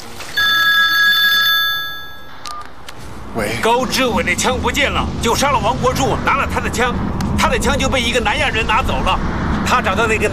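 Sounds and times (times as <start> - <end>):
telephone ringing with an incoming call: 0.3 - 2.6
speech: 3.4 - 10.3.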